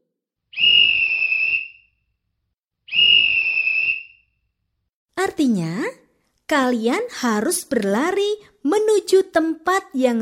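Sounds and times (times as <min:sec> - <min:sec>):
whistle blown as a signal in a children's game: 0:00.5 - 0:02.1, 0:02.8 - 0:04.4
speech: 0:05.4 - 0:10.1.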